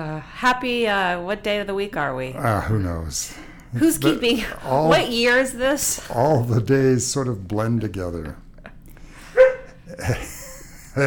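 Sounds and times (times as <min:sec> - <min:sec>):
speech: 0:00.0 - 0:08.4, 0:10.0 - 0:10.3
dog barking: 0:09.4 - 0:09.8.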